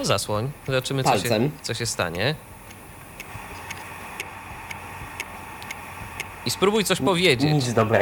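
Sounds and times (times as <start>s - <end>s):
speech: 0.0s - 2.5s, 6.5s - 8.0s
constant low hum: 0.0s - 8.0s
crisp even steady ticking: 1.6s - 7.4s.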